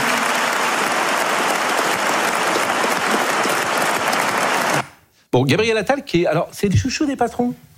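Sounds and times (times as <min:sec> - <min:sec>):
audience applause at a political debate: 0:00.0 - 0:05.0
speech: 0:05.4 - 0:07.7.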